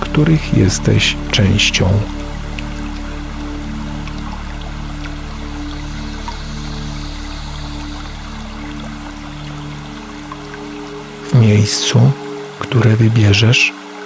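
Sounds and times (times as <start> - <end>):
speech: 0.0 - 2.2, 11.4 - 13.8
small stream trickling over rock ledges: 0.0 - 14.0
water drips: 0.0 - 14.0.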